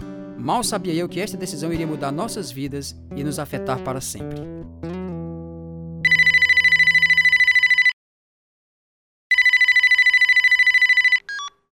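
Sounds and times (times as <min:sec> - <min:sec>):
speech: 0:00.4 - 0:05.0
telephone ringing in long electronic trilling bursts: 0:06.1 - 0:08.0, 0:09.3 - 0:11.7.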